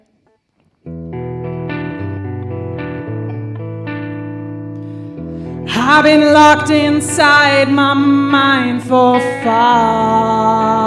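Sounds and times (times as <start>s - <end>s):
sustained electric instrument playing chords with a reverb effect: 0.8s - 10.8s
speech: 5.8s - 10.8s.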